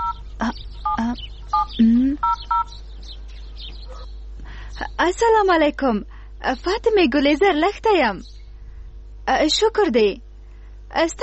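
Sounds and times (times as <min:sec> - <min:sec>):
brief low-pitched squawking sounds: 0:00.0 - 0:04.2
two-tone telephone keypad beeps while dialing: 0:01.6 - 0:02.7
speech: 0:01.8 - 0:02.3, 0:05.0 - 0:08.3, 0:09.3 - 0:10.2, 0:10.9 - 0:11.2.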